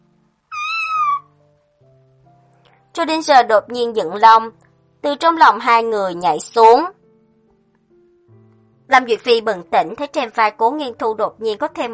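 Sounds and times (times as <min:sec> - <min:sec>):
excited cat meowing: 0:00.5 - 0:01.4
speech: 0:03.0 - 0:07.0, 0:08.9 - 0:11.9.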